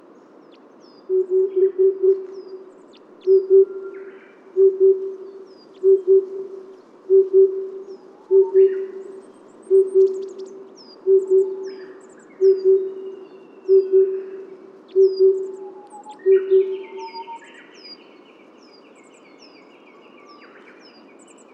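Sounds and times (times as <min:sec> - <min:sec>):
Red Crossbill Type E03 flight calls: 0:01.1 - 0:17.9.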